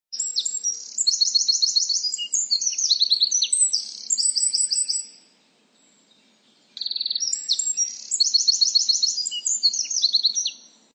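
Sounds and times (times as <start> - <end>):
wren singing: 0.1 - 10.9.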